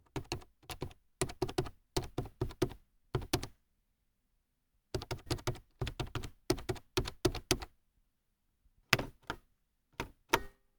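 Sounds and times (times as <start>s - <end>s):
hard typing on a laptop: 0.0s - 3.6s, 4.9s - 7.8s.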